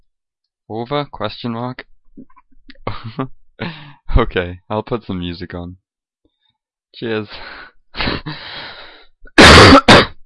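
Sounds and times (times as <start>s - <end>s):
speech: 0.7s - 2.3s, 2.9s - 5.8s, 6.9s - 8.7s
person coughing: 9.4s - 10.2s.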